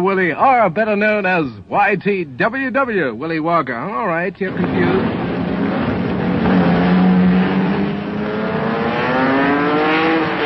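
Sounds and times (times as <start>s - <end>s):
speech: 0.0s - 5.3s
racing car engine revving and accelerating: 4.5s - 10.4s.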